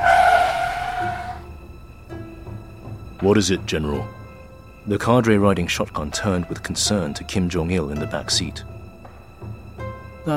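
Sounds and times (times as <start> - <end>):
tire screech from a car braking suddenly on a street in Pyongyang: 0.0 - 1.5
speech: 3.2 - 4.2, 4.8 - 8.7.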